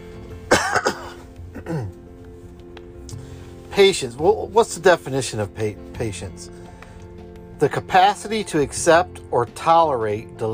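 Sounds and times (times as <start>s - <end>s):
person clearing throat with a low cough: 0.5s - 2.0s
person coughing: 0.5s - 2.0s
speech: 1.7s - 2.0s, 3.8s - 6.7s, 7.6s - 10.5s.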